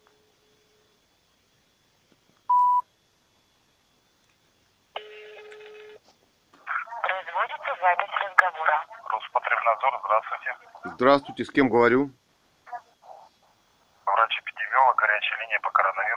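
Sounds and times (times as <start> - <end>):
short electronic dialing beep: 2.5 - 2.8
buzzing telephone ringing tone: 5.0 - 6.0
person talking over a thin band-limited phone line: 6.6 - 12.0, 14.0 - 16.1
speech: 9.7 - 12.2.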